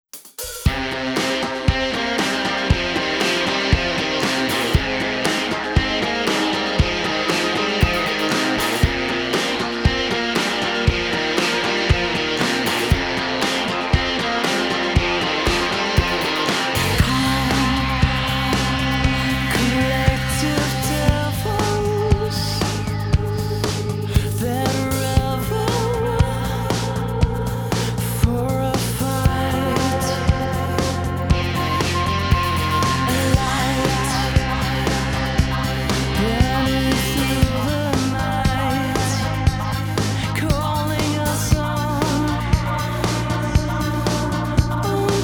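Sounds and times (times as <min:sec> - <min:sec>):
multi distorted sound: 0:00.6 - 0:45.2.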